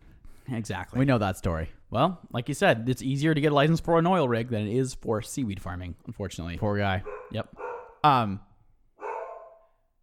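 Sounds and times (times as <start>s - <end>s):
speech: 0.5s - 8.5s
dog barking: 7.0s - 8.0s, 9.0s - 9.9s.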